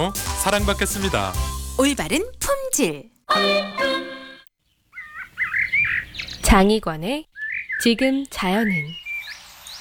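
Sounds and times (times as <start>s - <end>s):
speech: 0.0s - 3.9s, 6.5s - 9.0s
sustained musical tone: 3.3s - 4.5s
rufous-tailed robin singing whistled phrases: 5.0s - 6.4s, 7.4s - 7.9s, 8.6s - 9.7s.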